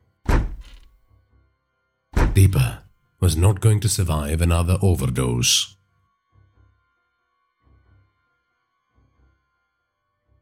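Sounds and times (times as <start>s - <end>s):
door being kicked in: 0.2s - 0.9s, 2.2s - 2.6s
speech: 2.4s - 5.8s.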